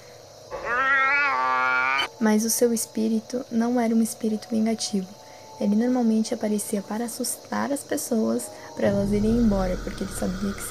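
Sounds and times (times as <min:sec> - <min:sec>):
ghost boy's cat-like meow: 0:00.5 - 0:02.1
speech: 0:02.2 - 0:10.6.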